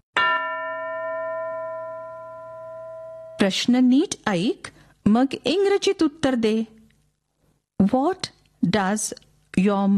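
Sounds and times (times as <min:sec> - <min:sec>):
school bell ringing: 0:00.2 - 0:03.4
speech: 0:03.4 - 0:06.8, 0:07.8 - 0:09.9.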